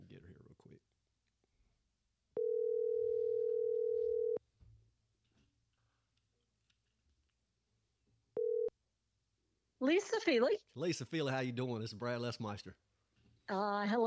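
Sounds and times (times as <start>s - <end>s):
telephone dial tone while placing a phone call: 2.4s - 4.4s, 8.4s - 8.7s
speech: 9.8s - 12.8s, 13.5s - 14.0s.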